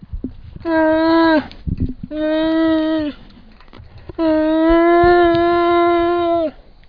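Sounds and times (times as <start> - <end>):
bear sounds: 0.6 - 1.5, 2.1 - 3.4, 4.1 - 6.6.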